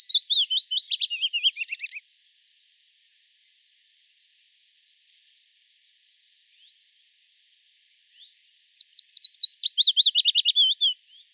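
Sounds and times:
willow warbler song: 0.0 - 2.1, 4.4 - 11.3.

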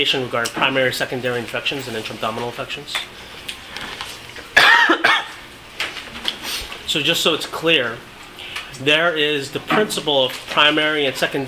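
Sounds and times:
speech: 0.0 - 3.9, 6.9 - 8.1, 8.7 - 11.4
person coughing during a lecture: 4.6 - 5.4.

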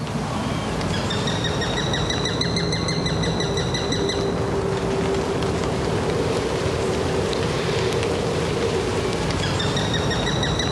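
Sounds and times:
low background hum: 0.0 - 10.7
adult Eurasian sparrowhawk chattering calls in response to begging young: 0.9 - 4.3, 9.4 - 10.7.

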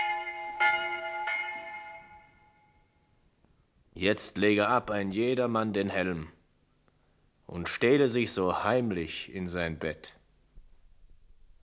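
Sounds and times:
church bell ringing in a historical Paris setting: 0.0 - 3.2
speech: 4.0 - 6.4, 7.5 - 10.2.

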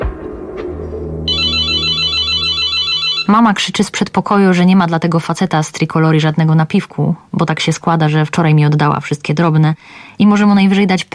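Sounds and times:
intercom ringing: 1.3 - 3.6
speech: 3.3 - 11.1.

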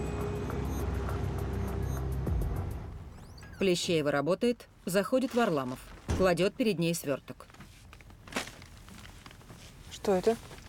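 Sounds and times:
car pulling off and driving away: 0.0 - 3.2
speech: 3.6 - 7.5, 10.0 - 10.5.

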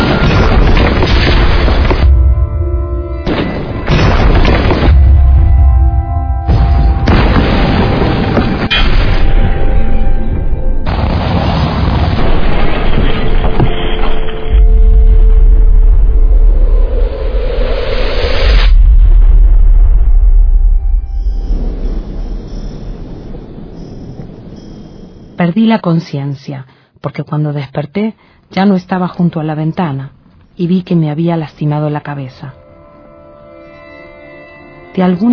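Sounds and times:
bomb explosion: 0.0 - 25.2
speech: 25.6 - 32.6, 35.0 - 35.3.

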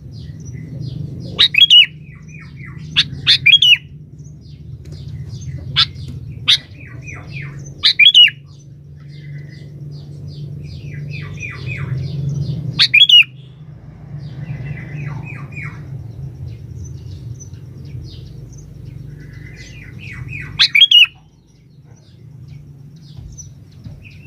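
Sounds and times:
sooty-headed bulbul singing: 0.0 - 24.2
steady low hum: 0.0 - 24.2.

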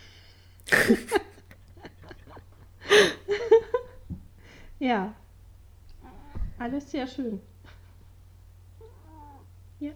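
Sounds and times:
speech: 0.9 - 1.2, 4.8 - 5.2, 6.6 - 7.5, 9.8 - 9.9
cat giving a chirp-like call near a laptop: 5.9 - 6.5, 8.8 - 9.6
cat meowing near a laptop: 6.0 - 6.6, 8.8 - 9.6.

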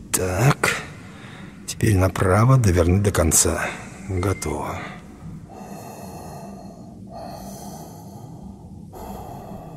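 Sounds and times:
speech: 0.2 - 0.6, 1.8 - 5.0
breathing through a connected oxygen supply: 5.5 - 9.7.

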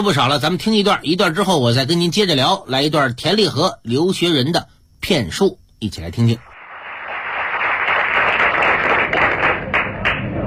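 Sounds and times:
speech: 0.0 - 6.5
audience applause at a live crosstalk comedy performance: 6.6 - 10.4.

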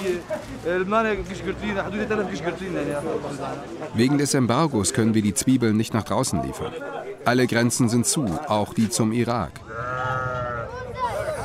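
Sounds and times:
speech: 0.0 - 10.2
sheep bleating at a traditional livestock market in Qamishli: 9.6 - 10.8.

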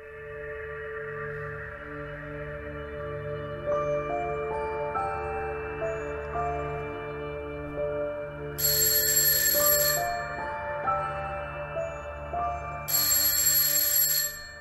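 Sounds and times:
soft music: 0.0 - 14.5
alarm clock ringing with metallic bell: 8.6 - 11.4, 12.6 - 14.5.

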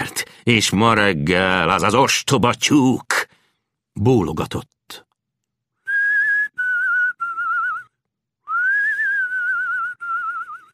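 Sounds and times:
speech: 0.5 - 3.2, 4.0 - 5.0
person whistling a nursery rhyme tune: 5.9 - 10.7.

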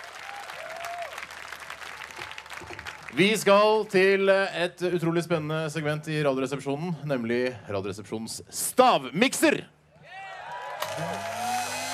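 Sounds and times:
warm audience applause: 0.0 - 3.4, 10.4 - 11.9
speech: 3.1 - 9.8.

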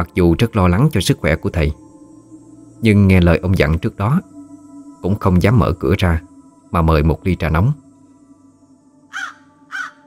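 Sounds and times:
speech: 0.0 - 1.8, 2.8 - 4.3, 5.0 - 7.8
faint steady hum: 0.0 - 10.0
crows cawing loudly at night: 9.1 - 10.0.

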